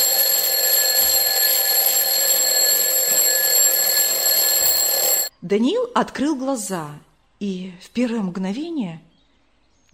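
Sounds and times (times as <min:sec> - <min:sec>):
alarm clock ringing with a shrill metallic tone: 0:00.0 - 0:05.3
speech: 0:05.4 - 0:09.1.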